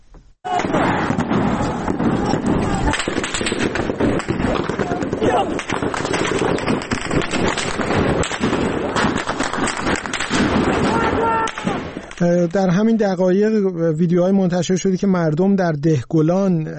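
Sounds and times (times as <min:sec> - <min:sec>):
voices shouting: 0:00.5 - 0:03.3, 0:04.4 - 0:05.7, 0:10.6 - 0:12.0
automatic gunfire bursts outdoors: 0:00.6 - 0:12.0
speech: 0:12.2 - 0:16.7.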